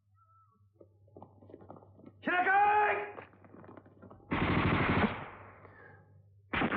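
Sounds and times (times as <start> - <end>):
gunfire bursts after a warning to halt: 4.3 - 5.6, 6.5 - 6.7.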